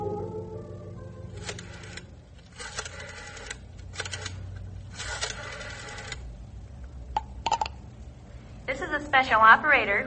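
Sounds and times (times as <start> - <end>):
telephone being dialed: 1.4 - 6.2
person speaking: 8.7 - 10.0.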